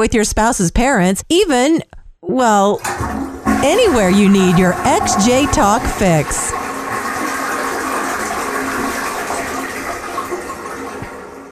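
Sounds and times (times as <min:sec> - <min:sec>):
speech: 0:00.0 - 0:06.6
toilet flushing: 0:02.8 - 0:11.5.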